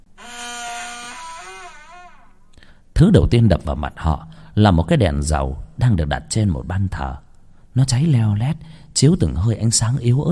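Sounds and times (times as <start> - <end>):
wooden door in a dilapidated old house creaking open: 0.2 - 2.5
speech: 3.0 - 7.2, 7.8 - 10.3.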